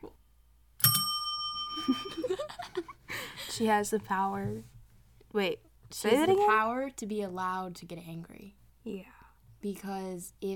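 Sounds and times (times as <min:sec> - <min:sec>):
small bell struck with a bright clear ding: 0:00.8 - 0:02.4
speech: 0:03.6 - 0:04.7, 0:05.3 - 0:10.5.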